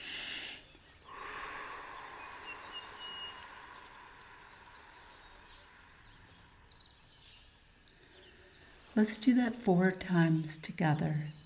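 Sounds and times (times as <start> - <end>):
sharp breath drawn in through the nose: 0.0 - 6.6
long airy exhale through pursed lips: 0.0 - 6.7
speech: 9.0 - 11.4.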